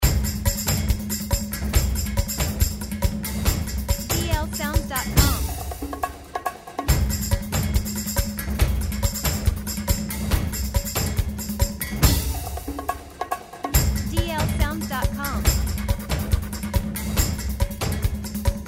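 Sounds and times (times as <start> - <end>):
action percussion loop: 0.0 - 18.6.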